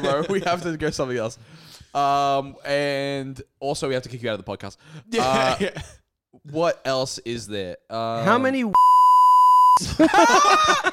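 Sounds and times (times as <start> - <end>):
laughter: 0.0 - 0.8, 9.8 - 10.9
speech: 0.0 - 9.0, 9.8 - 10.9
man speaking with drawn-out groaning speech: 5.1 - 5.8
censorship bleep tone: 8.8 - 9.8.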